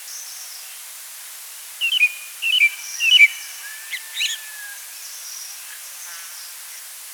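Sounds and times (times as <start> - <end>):
chestnut thrush song of whistled phrases: 1.8 - 4.8.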